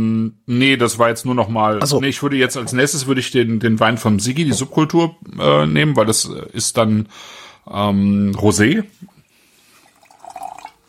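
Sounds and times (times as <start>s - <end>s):
speech: 0.0s - 9.2s
water pouring into a glass: 9.7s - 10.8s.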